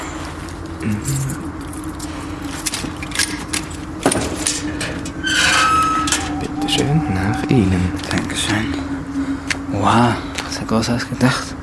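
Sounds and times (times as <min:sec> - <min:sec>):
low steady hum: 0:00.0 - 0:11.6
speech: 0:00.8 - 0:01.6, 0:06.8 - 0:09.0, 0:09.8 - 0:11.6
keys jangling while unlocking a door: 0:00.8 - 0:06.7.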